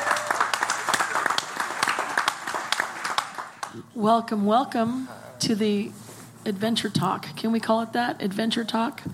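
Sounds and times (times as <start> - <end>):
audience applause welcoming a married couple: 0.0 - 3.8
speech: 3.8 - 9.1.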